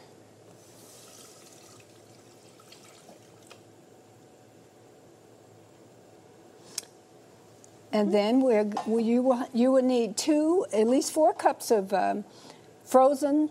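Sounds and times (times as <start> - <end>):
water pouring from a tap into a sink: 0.6 - 3.6
speech: 7.9 - 13.5.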